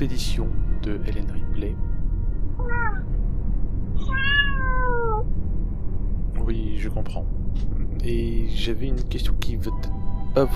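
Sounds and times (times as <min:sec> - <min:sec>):
speech: 0:00.0 - 0:02.0, 0:06.5 - 0:10.5
steady low hum: 0:00.0 - 0:10.5
cat meowing in reply: 0:02.6 - 0:03.1, 0:04.0 - 0:05.3.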